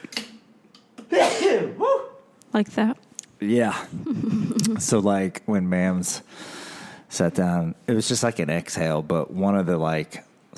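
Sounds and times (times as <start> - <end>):
loud sneeze: 1.1 - 2.2
speech: 2.6 - 10.5.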